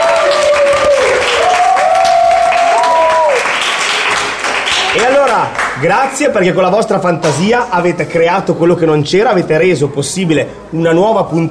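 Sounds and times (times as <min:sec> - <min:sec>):
people cheering and whooping: 0:00.0 - 0:05.5
group applause: 0:00.0 - 0:06.2
speech: 0:05.4 - 0:11.4.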